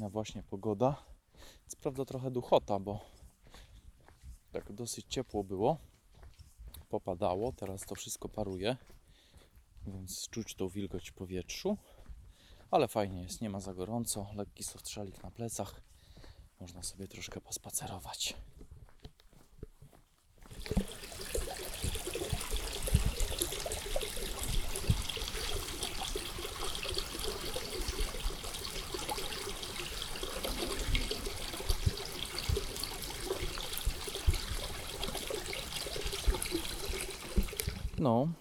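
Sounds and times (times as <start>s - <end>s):
speech: 0.0s - 3.6s, 4.5s - 5.9s, 6.9s - 9.0s, 9.8s - 11.9s, 12.7s - 15.9s, 16.6s - 18.6s, 20.6s - 21.0s, 38.0s - 38.3s
babbling stream flowing after rain: 20.5s - 38.1s.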